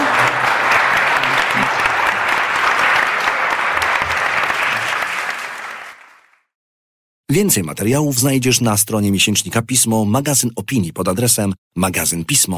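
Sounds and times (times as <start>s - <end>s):
audience applauding guests at the end of a discussion event: 0.0s - 6.5s
speech: 7.3s - 12.5s.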